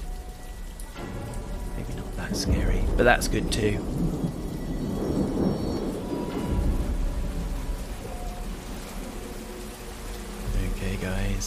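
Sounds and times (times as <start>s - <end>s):
deep rumbling thunder: 0.0s - 11.4s
steady rain pouring in a thunderstorm: 0.0s - 11.4s
speech: 2.3s - 4.2s.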